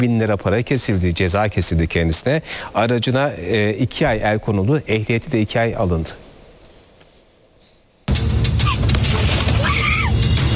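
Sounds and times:
speech: 0:00.0 - 0:06.3
indistinct shouting voices: 0:08.6 - 0:10.3
car window glass smashed by a punch: 0:08.8 - 0:10.0.

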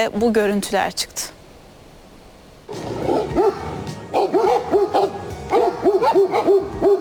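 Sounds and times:
speech: 0:00.0 - 0:01.4, 0:06.1 - 0:06.9
stray dogs barking and yelping while fighting two bears near Ankara: 0:02.8 - 0:06.9.

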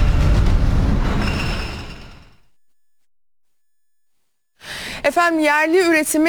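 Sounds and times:
electric train rumbling along the rails: 0:00.0 - 0:02.4
speech: 0:05.1 - 0:06.2.

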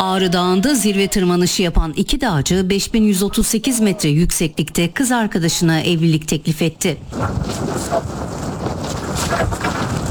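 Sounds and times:
speech: 0:00.0 - 0:08.4, 0:09.2 - 0:09.8
storm wind gusting on a mountain summit at 5138 metres in freezing cold: 0:07.0 - 0:10.1.

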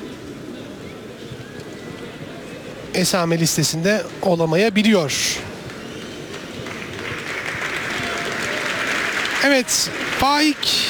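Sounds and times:
speech: 0:03.0 - 0:05.5, 0:09.4 - 0:10.8
football crowd applauding in a stadium: 0:05.4 - 0:10.8.

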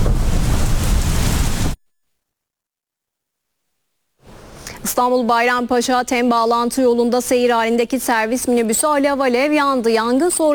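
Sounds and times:
heavy rain pouring on a crowd circling the Kaaba: 0:00.0 - 0:01.8
speech: 0:05.0 - 0:10.5.

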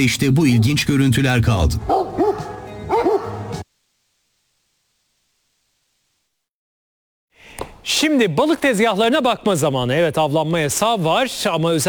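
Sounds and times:
speech: 0:00.0 - 0:02.1, 0:07.9 - 0:11.8
dogs barking: 0:01.8 - 0:03.6.

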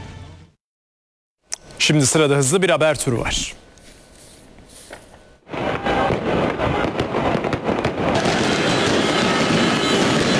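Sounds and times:
speech: 0:01.8 - 0:03.6
fireworks celebrating a sports victory in Şırnak crackling and popping: 0:04.8 - 0:10.3.

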